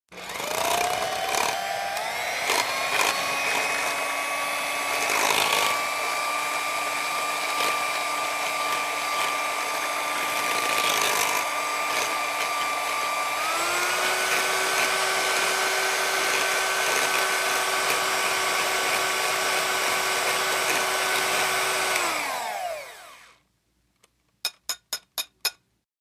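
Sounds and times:
electric mixer whipping: 0.1s - 23.4s.

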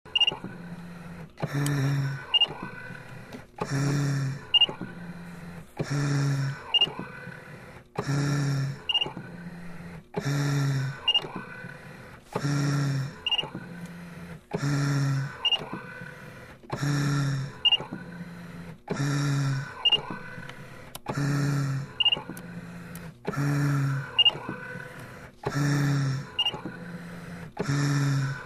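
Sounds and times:
respirator ventilator hum: 0.1s - 28.4s.

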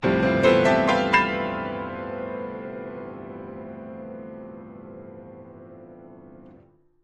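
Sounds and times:
grand piano playing ascending chords: 0.0s - 6.8s.

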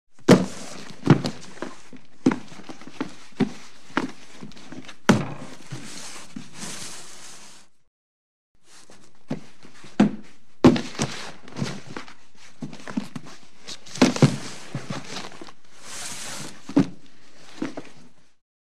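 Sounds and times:
cardboard dragging: 0.3s - 7.8s, 10.8s - 18.0s.

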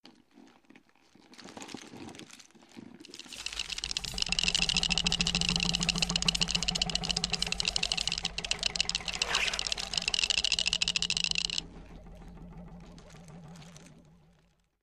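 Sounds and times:
robot body movement cartoon gadget effect: 3.1s - 14.4s.

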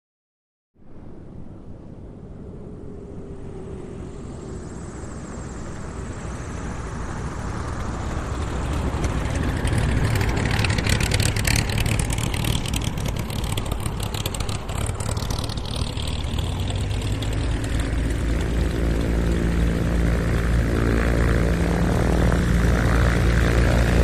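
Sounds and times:
Beechcraft plane taxiing away: 1.1s - 24.0s.

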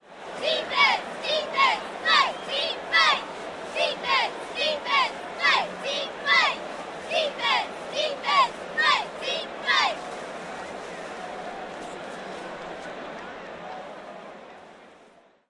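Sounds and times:
football cheerleaders chanting: 0.0s - 10.1s.

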